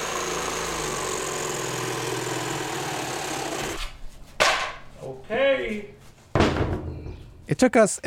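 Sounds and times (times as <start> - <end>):
power saw cutting through wood: 0.0 - 4.0
speech: 5.3 - 6.0, 7.5 - 8.0.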